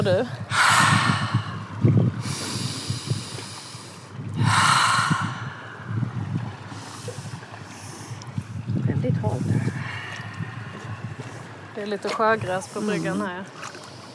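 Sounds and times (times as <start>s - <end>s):
speech: 0.0s - 1.0s, 11.8s - 13.6s
person gasping while going down jetty steps into cold water: 0.5s - 3.7s, 4.4s - 5.9s, 9.5s - 11.4s.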